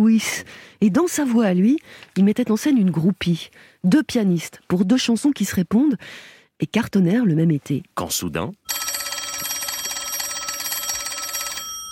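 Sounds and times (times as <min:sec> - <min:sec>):
speech: 0:00.0 - 0:08.8
telephone bell ringing in a metallic trill: 0:08.7 - 0:11.9.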